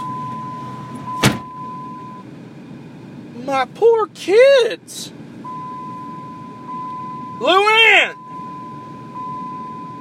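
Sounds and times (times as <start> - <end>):
truck seatbelt warning chime: 0.0 - 2.2, 5.4 - 9.9
speech: 3.4 - 5.2, 7.4 - 8.2
man shouting one word: 3.5 - 5.0, 7.4 - 8.2.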